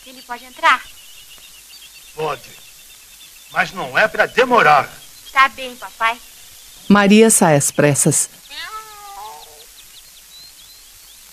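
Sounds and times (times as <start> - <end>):
speech: 0.0 - 1.0, 2.2 - 2.7, 3.5 - 6.3, 6.9 - 8.8
tabby cat meowing in a yard: 8.5 - 9.7.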